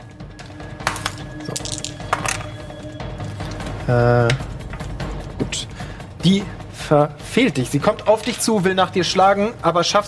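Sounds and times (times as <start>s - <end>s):
dice clattering across a tabletop: 1.5s - 2.3s
speech: 3.9s - 4.5s, 6.2s - 10.0s.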